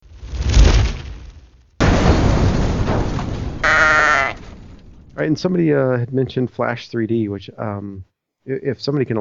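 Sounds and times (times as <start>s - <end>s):
explosion sound effect booming: 0.4s - 5.6s
speech: 5.2s - 9.1s.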